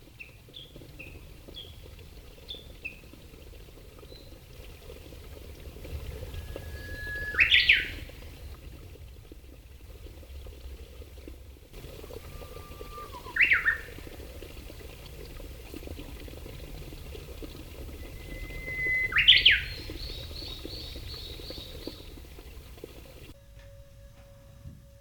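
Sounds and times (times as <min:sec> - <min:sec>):
babbling stream: 0:00.0 - 0:23.4
Japanese bush warbler singing: 0:06.4 - 0:08.1, 0:13.0 - 0:13.9, 0:18.1 - 0:22.1.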